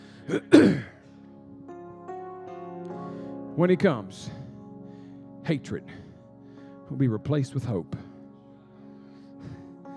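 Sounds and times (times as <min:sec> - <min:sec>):
speech: 0:00.3 - 0:00.8, 0:03.6 - 0:04.4, 0:05.5 - 0:06.0, 0:06.9 - 0:08.1
man clearing his throat while preaching a sermon: 0:00.3 - 0:01.0.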